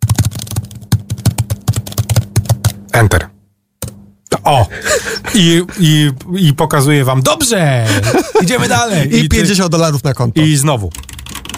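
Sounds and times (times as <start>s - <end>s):
typing on a computer keyboard: 0.0s - 2.8s, 10.9s - 11.5s
speech: 3.0s - 3.3s, 4.4s - 11.1s
laughter: 4.6s - 5.9s, 7.8s - 9.4s.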